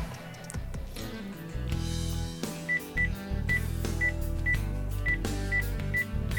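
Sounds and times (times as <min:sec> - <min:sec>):
dense loud music: 0:00.0 - 0:06.3
electronic keypad beeps of a phone number being dialed: 0:02.7 - 0:06.3.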